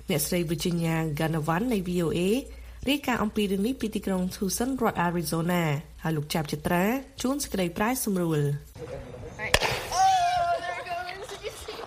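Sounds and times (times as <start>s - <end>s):
speech: 0.1s - 9.2s
water and effervescent tablet pressure rocket pop: 9.5s - 10.0s.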